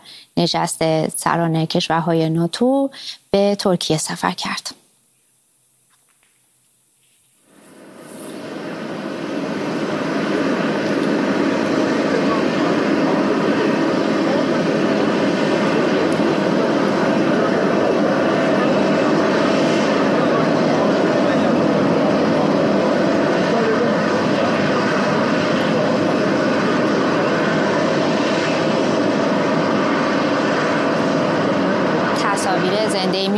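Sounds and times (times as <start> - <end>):
speech: 0.4 - 4.8
large jet aircraft engines roaring while taxiing: 7.5 - 33.3.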